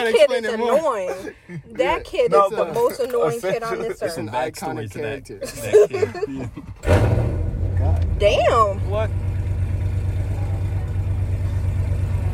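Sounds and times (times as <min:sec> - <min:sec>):
laughter: 0:00.0 - 0:04.4, 0:05.3 - 0:06.8
speech: 0:00.0 - 0:07.2, 0:07.8 - 0:09.2
car engine revving with loud steady low rumble: 0:06.5 - 0:12.3.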